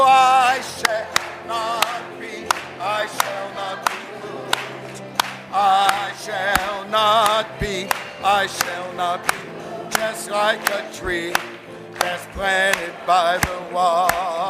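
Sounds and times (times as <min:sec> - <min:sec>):
people clapping hands along with singing: 0:00.0 - 0:14.4
people singing a gospel melody: 0:00.0 - 0:14.4
speech: 0:10.3 - 0:14.4.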